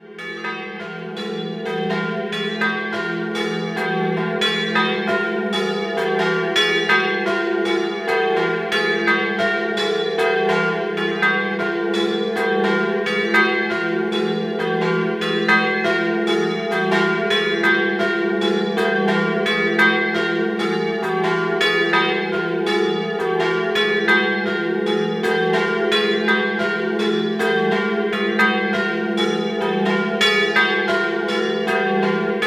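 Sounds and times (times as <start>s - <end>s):
bells ringing in San Foca: 0.1s - 32.4s.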